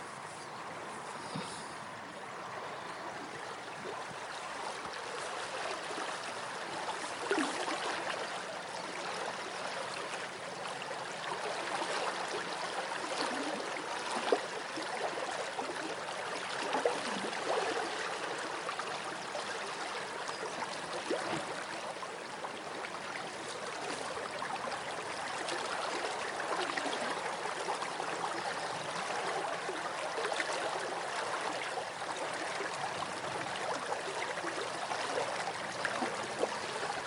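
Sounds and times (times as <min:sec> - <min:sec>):
river water flowing: 0:00.0 - 0:37.0.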